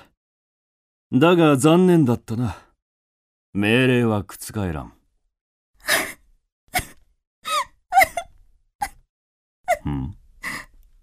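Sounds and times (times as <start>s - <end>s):
speech: 1.1s - 2.6s, 3.6s - 5.0s
woman sobbing with gasping inhales and quavering whimpers: 5.8s - 9.0s, 9.7s - 10.7s.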